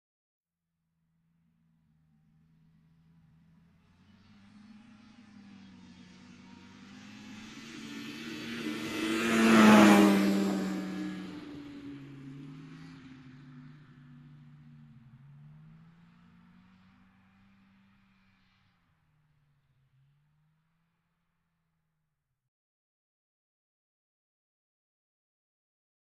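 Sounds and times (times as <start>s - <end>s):
off-road motorbike passing by: 1.8s - 21.5s.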